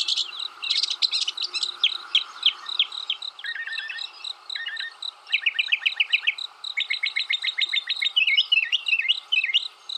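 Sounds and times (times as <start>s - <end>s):
mockingbird song: 0.0s - 9.9s.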